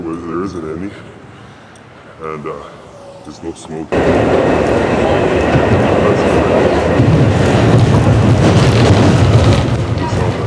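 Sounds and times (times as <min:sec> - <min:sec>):
speech: 0:00.1 - 0:01.2, 0:02.2 - 0:06.3
moving train rumble and rattle heard from inside the carriage: 0:04.0 - 0:10.4.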